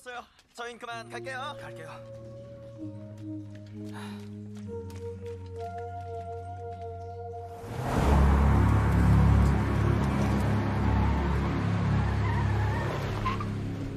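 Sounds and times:
speech: 0.2s - 5.0s
road noise: 3.8s - 13.9s
car engine rumble while being driven: 7.3s - 13.9s.

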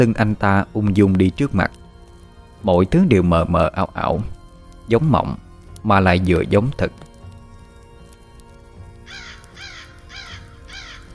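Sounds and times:
speech: 0.0s - 1.8s, 2.6s - 7.1s
soft sustained tonal background: 0.0s - 11.1s
crow cawing at night: 9.1s - 11.1s.

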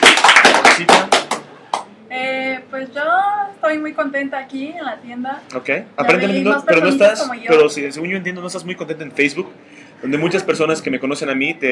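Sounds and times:
people clapping in a comic book store: 0.0s - 2.0s
speech: 3.7s - 11.7s.

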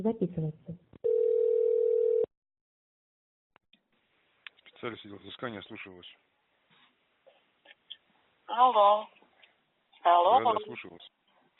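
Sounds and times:
speech: 0.0s - 0.9s, 4.8s - 6.4s, 8.5s - 9.2s, 10.0s - 11.2s
telephone ringing tone while calling a debt collection agency: 1.0s - 2.3s.

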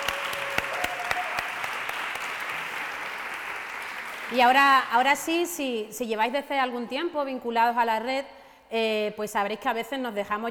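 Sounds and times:
applause at a gathering: 0.0s - 5.1s
speech: 4.3s - 10.4s.

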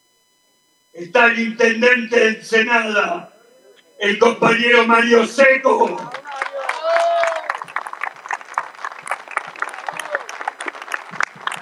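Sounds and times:
speech: 1.0s - 3.3s, 4.0s - 6.2s
crowd applauding at a political rally to welcome a local mayor: 5.8s - 11.5s.

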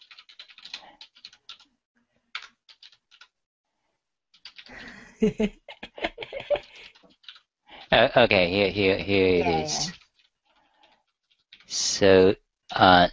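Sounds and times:
computer keyboard typing in a text editor: 0.0s - 1.7s, 2.3s - 3.4s, 4.3s - 5.0s, 6.0s - 11.7s
speech: 4.7s - 5.6s, 8.0s - 10.0s, 12.0s - 13.1s
laughter: 4.7s - 7.0s.

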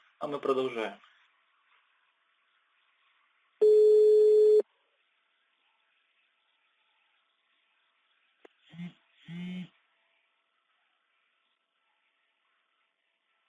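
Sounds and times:
speech: 0.2s - 1.1s
telephone busy beep after the caller hung up: 3.6s - 4.6s.

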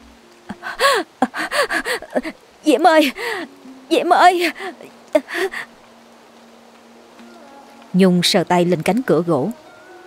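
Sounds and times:
woman panting heavily as she crawls toward a door: 0.5s - 2.3s, 3.2s - 3.6s, 4.5s - 5.7s
speech: 1.0s - 5.7s, 7.9s - 9.6s.

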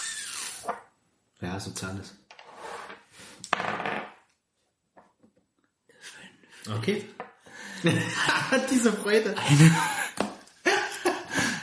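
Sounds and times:
speech: 1.4s - 2.2s, 6.7s - 7.2s, 7.8s - 10.0s
twenty-sided die rolled on a tabletop: 3.5s - 4.2s
laughter: 7.7s - 11.6s.

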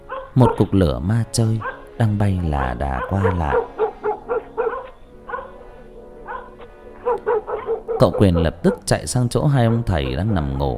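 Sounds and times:
dogs barking outside a house: 0.0s - 10.7s
speech: 0.4s - 3.7s, 8.0s - 10.7s.

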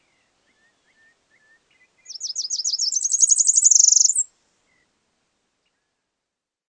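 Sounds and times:
Tropical parula Setophaga pitiayumi singing: 0.0s - 4.9s.

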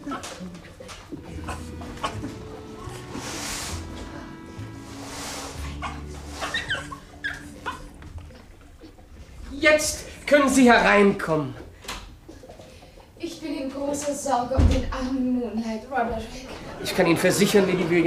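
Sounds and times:
rustling: 0.1s - 10.3s
dog whimpering and yipping: 5.8s - 8.0s
speech: 9.6s - 11.6s, 14.1s - 18.0s
laughter: 16.4s - 18.0s.

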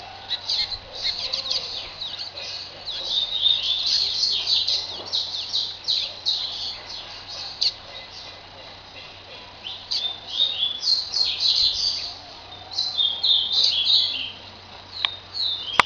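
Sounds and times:
faint low hum: 0.0s - 15.8s
double-collared seedeater twittering and trilling: 0.2s - 15.8s.

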